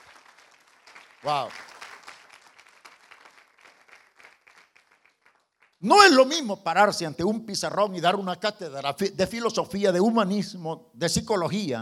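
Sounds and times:
audience applauding at a church sermon: 0:00.0 - 0:05.8
speech: 0:01.2 - 0:01.7, 0:05.8 - 0:11.7.

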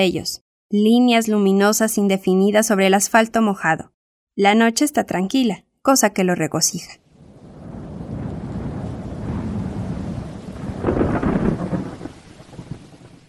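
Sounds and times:
speech: 0:00.0 - 0:07.0
rain and wind storm at night in Mexico City: 0:07.0 - 0:13.2.

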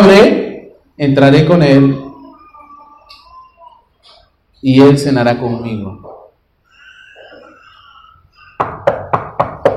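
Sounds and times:
speech: 0:01.0 - 0:02.0, 0:04.6 - 0:06.1
sharp knocking on a door: 0:08.6 - 0:09.7.

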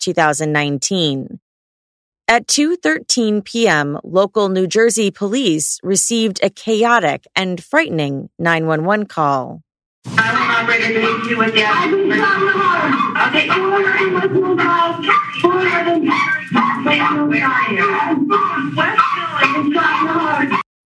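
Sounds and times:
speech: 0:00.0 - 0:01.4, 0:02.3 - 0:20.6
dogs barking and yipping in a 911 call: 0:12.1 - 0:20.6.

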